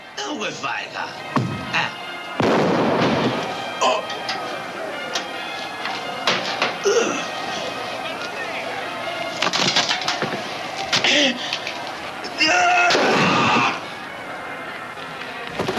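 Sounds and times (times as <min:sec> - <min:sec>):
voices: 0:00.0 - 0:15.6
pistol gunshots through a towel in a film scene: 0:02.4 - 0:03.6.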